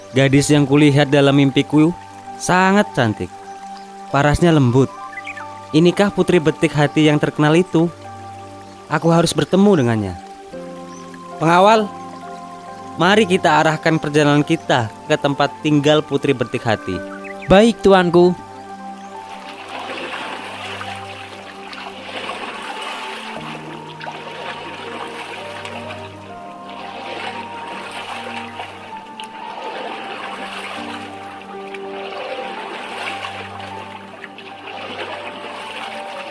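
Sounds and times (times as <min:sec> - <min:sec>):
river water lapping around a boat: 0:00.0 - 0:36.2
speech: 0:00.1 - 0:03.4, 0:04.1 - 0:05.0, 0:05.7 - 0:08.0, 0:08.9 - 0:10.2, 0:11.4 - 0:12.0, 0:13.0 - 0:18.4.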